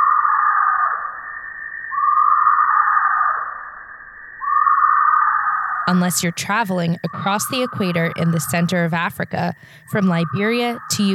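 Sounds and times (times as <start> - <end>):
tree hyrax calling in equatorial central Africa: 0.0 - 1.2, 1.9 - 3.8, 4.4 - 11.1
speech: 5.9 - 11.1.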